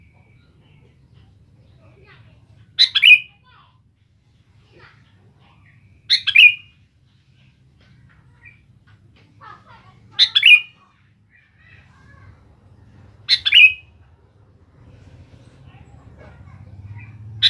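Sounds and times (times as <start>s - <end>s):
faint low hum: 0.0s - 17.4s
Sooty-headed bulbul chirping song: 2.8s - 3.4s, 5.7s - 6.8s, 10.2s - 10.8s, 13.3s - 14.0s.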